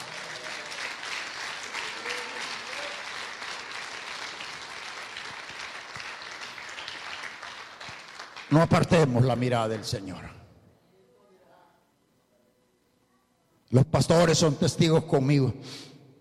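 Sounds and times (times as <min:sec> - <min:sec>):
audience applauding: 0:00.0 - 0:10.0
speech: 0:08.5 - 0:10.4, 0:13.7 - 0:15.9.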